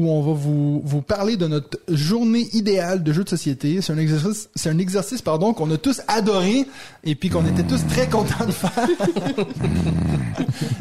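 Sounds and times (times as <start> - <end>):
speech: 0.0 - 10.7
person growling in displeasure: 7.3 - 8.6, 9.4 - 10.7
laughter: 7.5 - 10.7.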